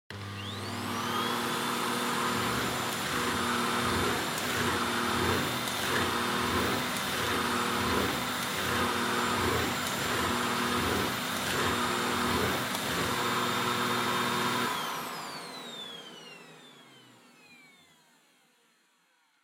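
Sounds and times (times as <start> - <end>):
vacuum cleaner vacuuming a wood floor: 0.1 - 19.4.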